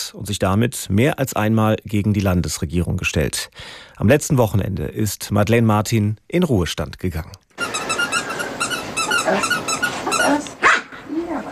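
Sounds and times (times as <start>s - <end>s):
speech: 0.1s - 7.4s, 9.3s - 10.4s
squeaky ball squeaking as it is thrown across a garden lawn: 7.6s - 10.5s
female dog barking or yelping: 8.2s - 11.0s.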